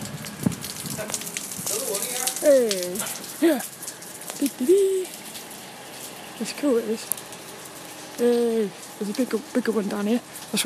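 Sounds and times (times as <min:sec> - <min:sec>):
steady rain pattering on hard pavement: 0:00.0 - 0:10.6
speech: 0:01.0 - 0:03.8, 0:04.4 - 0:05.2, 0:06.4 - 0:07.2, 0:08.2 - 0:10.6.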